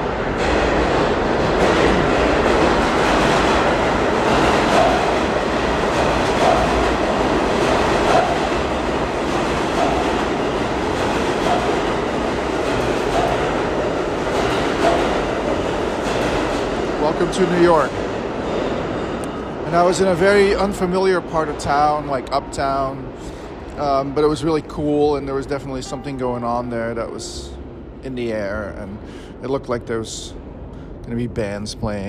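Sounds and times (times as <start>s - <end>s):
train rumbling along rail tracks: 0.0s - 32.0s
speech: 17.3s - 18.0s, 19.7s - 30.4s, 31.1s - 32.0s.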